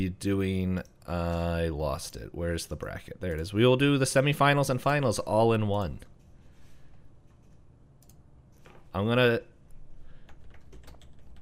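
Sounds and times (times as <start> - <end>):
speech: 0.0 - 6.1, 9.0 - 9.5
keyboard typing: 10.2 - 11.3.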